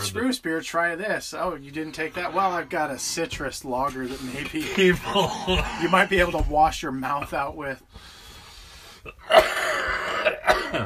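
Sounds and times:
speech: 0:00.1 - 0:08.2, 0:09.0 - 0:09.9
raspy coughs: 0:04.3 - 0:06.1, 0:09.0 - 0:10.8
throat clearing: 0:09.1 - 0:10.8.

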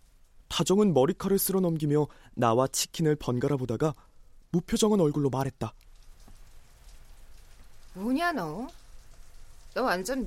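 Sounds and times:
speech: 0:00.6 - 0:05.8, 0:08.0 - 0:08.8, 0:09.8 - 0:10.2
shower water spray pattering on a hard surface: 0:04.6 - 0:10.2.

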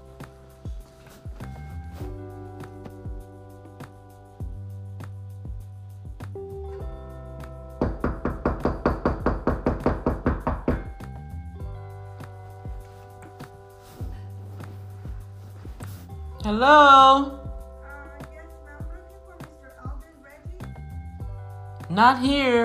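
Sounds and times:
firm knocking on a door: 0:07.8 - 0:11.0
speech: 0:16.5 - 0:17.4, 0:22.0 - 0:22.6.

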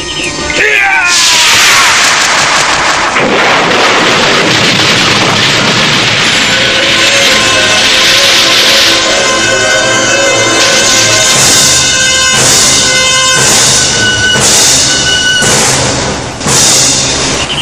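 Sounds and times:
sharp heavy blows smashing boulder: 0:01.0 - 0:17.6
rumbling debris: 0:01.1 - 0:16.4
huge boulder smashed apart: 0:01.2 - 0:07.6.

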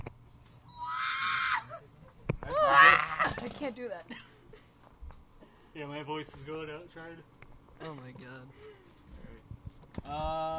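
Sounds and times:
person imitating a shrill movie-style scream: 0:00.7 - 0:01.8, 0:02.5 - 0:03.4
speech: 0:03.7 - 0:04.3, 0:05.8 - 0:08.8, 0:10.0 - 0:10.5.

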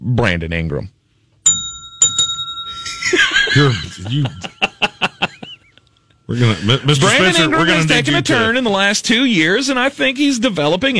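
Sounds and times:
speech: 0:00.1 - 0:01.0, 0:03.6 - 0:05.0, 0:06.3 - 0:10.9
bright bell dinging: 0:01.4 - 0:04.2
laughter: 0:02.9 - 0:08.2.

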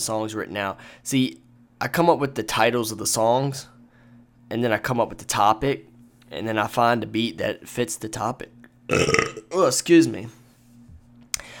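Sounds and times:
speech: 0:00.0 - 0:03.8, 0:04.5 - 0:10.4
loud gurgling burp: 0:08.9 - 0:09.6.

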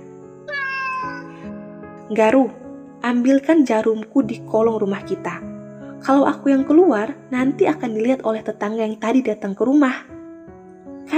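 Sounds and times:
cat meowing: 0:00.4 - 0:01.5
speech: 0:02.1 - 0:10.1.

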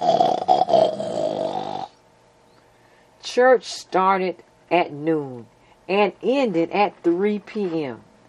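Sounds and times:
dog snoring in deep sleep: 0:00.0 - 0:02.0
speech: 0:03.4 - 0:08.1.

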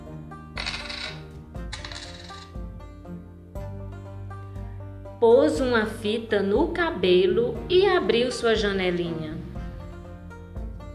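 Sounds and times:
coins clinking as they are put into a small box: 0:00.6 - 0:02.6
speech: 0:05.2 - 0:09.4.

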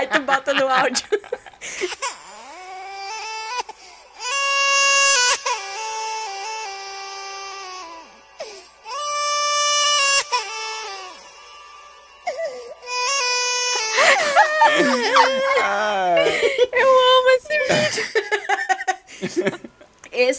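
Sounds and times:
speech: 0:00.0 - 0:01.8
laughter: 0:00.0 - 0:01.9, 0:13.9 - 0:19.9
baby crying with autotune effect: 0:01.6 - 0:18.2.

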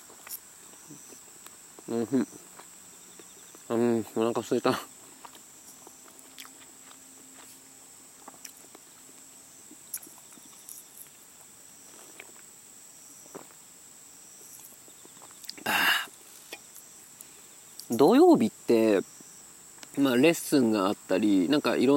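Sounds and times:
faint steady high-pitched hum: 0:00.0 - 0:21.9
speech: 0:01.9 - 0:02.4, 0:03.7 - 0:04.9, 0:20.2 - 0:21.9
person chewing yakitori: 0:05.1 - 0:07.6, 0:08.2 - 0:12.4, 0:14.6 - 0:15.7.

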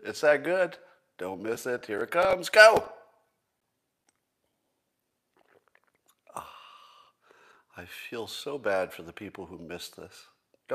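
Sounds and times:
speech: 0:00.0 - 0:03.0, 0:07.8 - 0:10.7
person slurping a drink from a mug: 0:05.3 - 0:07.1.

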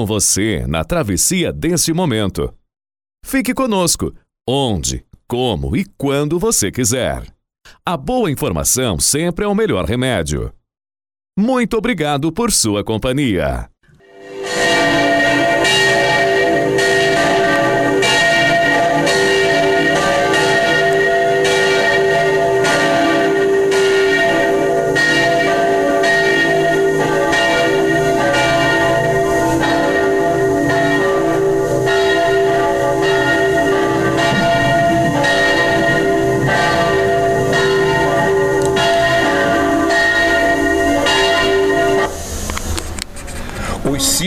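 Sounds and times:
speech: 0:00.0 - 0:02.6, 0:03.2 - 0:10.6, 0:11.4 - 0:13.7
sound: 0:13.9 - 0:44.2
church bells ringing at St. Peter's Square in the Vatican: 0:14.0 - 0:42.2.

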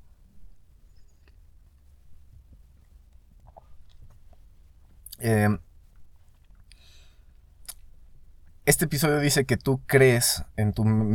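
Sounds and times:
low steady hum: 0:00.0 - 0:11.1
person sipping coffee: 0:03.4 - 0:04.3
slurping and swallowing clicks: 0:03.4 - 0:04.3
speech: 0:05.2 - 0:05.6, 0:08.7 - 0:11.1.

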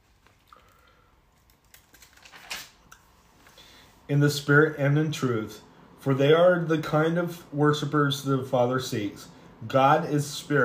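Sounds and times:
book page turning: 0:00.0 - 0:03.6
speech: 0:04.1 - 0:10.6.

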